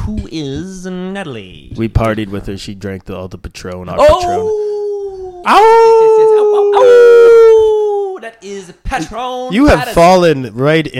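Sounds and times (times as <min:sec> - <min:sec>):
speech: 0:00.1 - 0:04.7, 0:05.4 - 0:07.6, 0:08.2 - 0:10.9
dog howling: 0:04.0 - 0:08.2.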